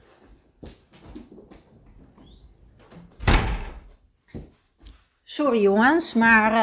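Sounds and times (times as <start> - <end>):
rustling and shuffling: 0.0 - 5.3
garden door pulled shut with a solid thud: 2.9 - 4.0
speech: 5.4 - 6.6.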